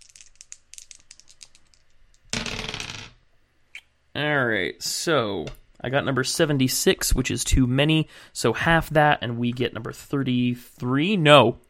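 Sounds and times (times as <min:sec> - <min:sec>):
small dice clattering across a hard surface: 0:00.0 - 0:03.2
speech: 0:04.2 - 0:11.6.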